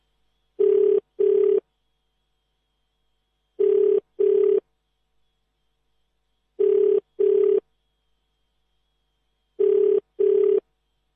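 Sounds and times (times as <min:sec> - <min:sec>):
telephone ringback tone: 0:00.6 - 0:01.6, 0:03.6 - 0:04.6, 0:09.6 - 0:10.6.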